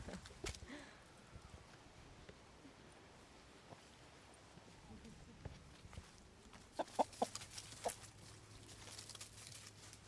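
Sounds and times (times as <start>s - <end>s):
farmyard background: 0.0s - 10.0s
young hens clucking in alarm: 6.7s - 8.1s.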